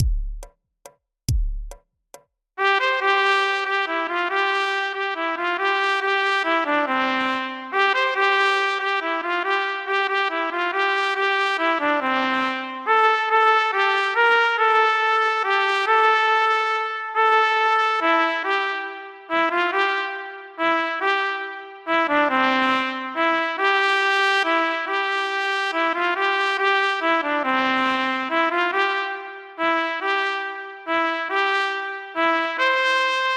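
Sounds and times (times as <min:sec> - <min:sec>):
solo trumpet: 0:02.6 - 0:33.3.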